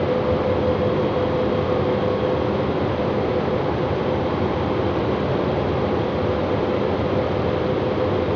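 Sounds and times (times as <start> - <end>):
fan: 0.0 - 8.3.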